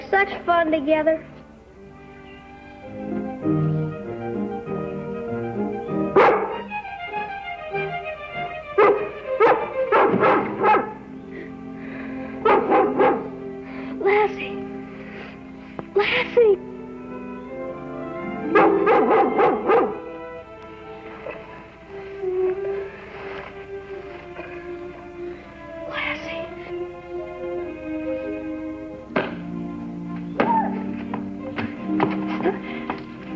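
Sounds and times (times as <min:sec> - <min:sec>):
soft tonal background: 0:00.0 - 0:09.9, 0:10.8 - 0:33.3
speech: 0:00.1 - 0:01.3
dog barking: 0:06.1 - 0:06.7, 0:08.8 - 0:11.0, 0:12.4 - 0:13.4, 0:18.5 - 0:20.0.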